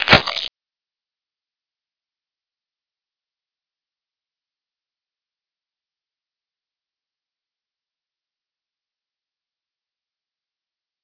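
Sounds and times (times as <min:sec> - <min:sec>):
biting: 0:00.0 - 0:00.5.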